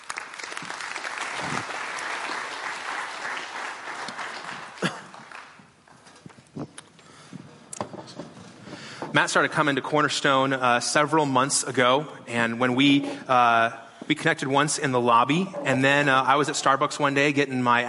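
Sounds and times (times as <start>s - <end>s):
audience applause: 0.0s - 5.8s
speech: 9.2s - 17.8s.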